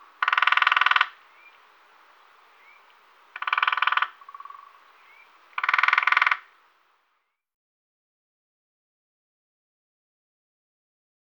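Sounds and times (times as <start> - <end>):
lesser spotted woodpecker rattling calls: 0.0 - 6.8.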